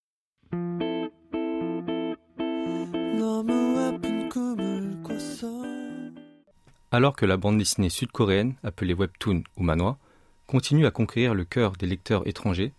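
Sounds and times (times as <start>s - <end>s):
electronic pop song about friendship with dogs: 0.6s - 6.4s
speech: 6.9s - 12.7s.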